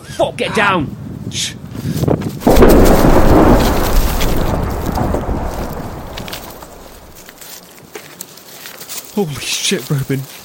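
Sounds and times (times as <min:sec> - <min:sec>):
speech: 0:00.2 - 0:02.1, 0:09.2 - 0:10.4
refinery explosion blast with shockwave and deep roar: 0:02.4 - 0:07.2.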